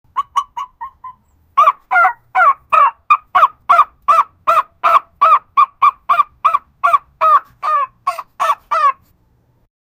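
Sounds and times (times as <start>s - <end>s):
chicken: 0.1s - 9.1s.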